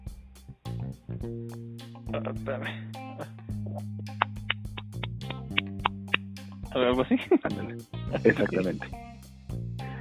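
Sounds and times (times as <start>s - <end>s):
speech: 1.2s - 3.9s, 6.8s - 9.0s
voice imitating rhythmic slapping sound: 3.2s - 6.5s
laughter: 7.0s - 8.9s.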